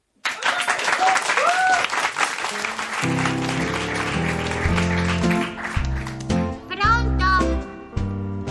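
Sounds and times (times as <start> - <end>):
loud dense audience applause: 0.2 - 6.3
low melodic music: 3.0 - 8.5.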